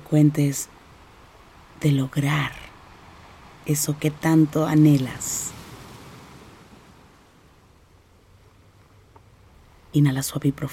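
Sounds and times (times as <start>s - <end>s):
ocean waves washing in: 0.0s - 8.4s
speech: 0.1s - 0.8s, 1.8s - 2.6s, 3.6s - 5.6s, 10.0s - 10.7s.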